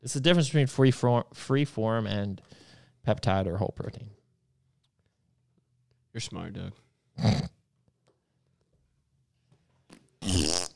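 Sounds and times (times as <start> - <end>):
speech: 0.0 - 4.2, 6.1 - 7.5
comic fart sound effect: 9.9 - 10.7.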